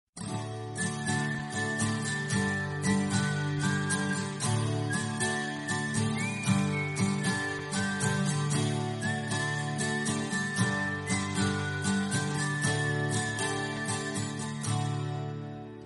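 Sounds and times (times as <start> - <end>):
background guitar music: 0.2 - 15.8.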